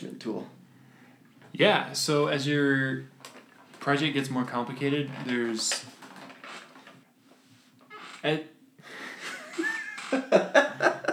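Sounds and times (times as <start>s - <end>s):
speech: 0.0s - 0.6s, 1.6s - 3.1s, 3.8s - 6.0s, 8.2s - 8.5s
squeaky chair creaking and squeaking: 3.2s - 7.1s, 7.8s - 8.4s, 9.6s - 10.4s.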